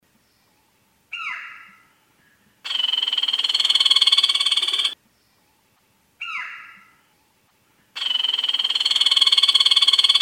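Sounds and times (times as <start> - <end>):
woodpecker pecking: 2.7 - 5.0, 8.0 - 10.2.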